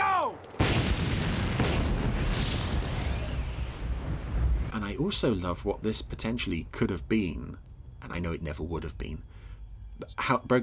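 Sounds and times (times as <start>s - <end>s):
missile explosion: 0.6s - 4.8s
speech: 5.0s - 9.4s, 10.0s - 10.6s.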